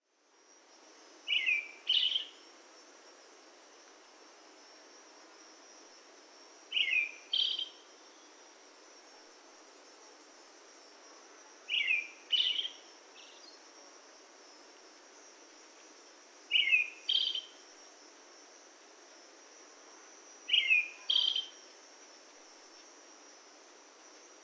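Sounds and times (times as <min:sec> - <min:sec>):
brown-headed thrush singing: 0:01.3 - 0:02.4, 0:06.8 - 0:07.8, 0:11.7 - 0:13.6, 0:16.5 - 0:17.5, 0:20.5 - 0:21.6.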